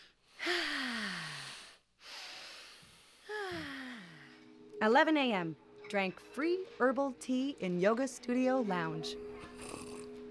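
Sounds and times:
deep breaths after a yoga class: 0:00.0 - 0:04.5
speech: 0:04.8 - 0:09.3.

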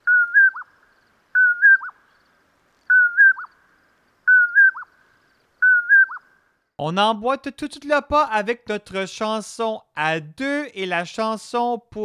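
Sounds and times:
western North American bird whistled call: 0:00.0 - 0:00.8, 0:01.4 - 0:02.0, 0:02.9 - 0:03.6, 0:04.3 - 0:05.0, 0:05.6 - 0:06.4
speech: 0:06.8 - 0:12.0.

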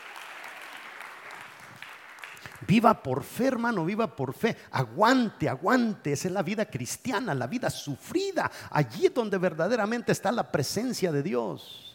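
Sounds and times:
congregation clapping: 0:00.0 - 0:03.1
speech: 0:02.7 - 0:11.9.

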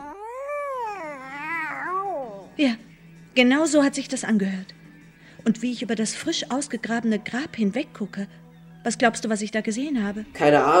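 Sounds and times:
cat yowling: 0:00.0 - 0:02.6
speech: 0:02.6 - 0:04.8, 0:05.4 - 0:10.7.

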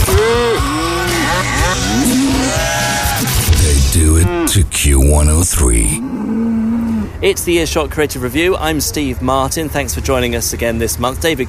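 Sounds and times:
cow mooing: 0:00.0 - 0:02.9, 0:04.1 - 0:04.6, 0:06.0 - 0:07.2
speech: 0:04.6 - 0:11.4.

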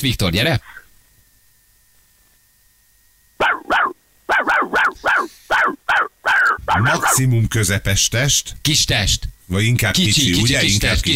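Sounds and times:
speech: 0:00.0 - 0:00.8, 0:06.8 - 0:11.1
person imitating a dog barking: 0:03.4 - 0:07.2.

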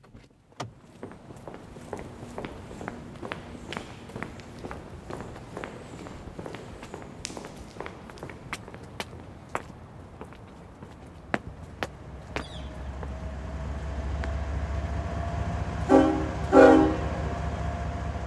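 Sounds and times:
footsteps: 0:00.6 - 0:13.2
train idling at grain elevator: 0:00.8 - 0:08.5, 0:11.9 - 0:18.2
train horn blasts: 0:15.7 - 0:17.5.

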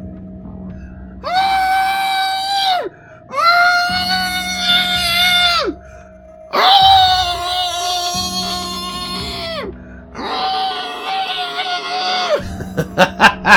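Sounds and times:
men screaming and raving in madness: 0:01.2 - 0:13.5
laughter: 0:12.4 - 0:13.5.

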